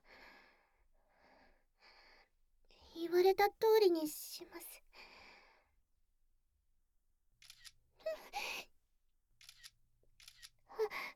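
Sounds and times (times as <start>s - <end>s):
speech: 3.1s - 5.1s
camera shutter clicks: 7.4s - 7.8s, 9.4s - 10.6s.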